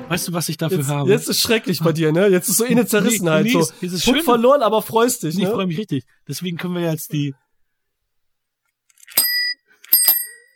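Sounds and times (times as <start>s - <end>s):
speech: 0.1s - 7.4s
laughter: 2.4s - 4.4s
bicycle bell ringing: 9.0s - 10.5s.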